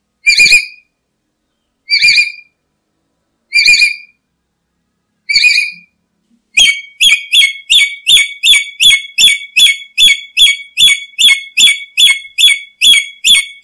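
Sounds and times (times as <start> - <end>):
Black-capped lory calls: 0.2 - 0.9, 1.8 - 2.6, 3.5 - 4.2, 5.3 - 6.0, 6.6 - 13.6.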